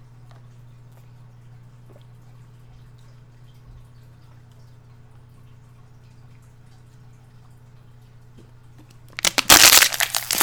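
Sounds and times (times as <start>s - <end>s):
plastic water bottle crinkling and crushed: 9.2s - 10.4s.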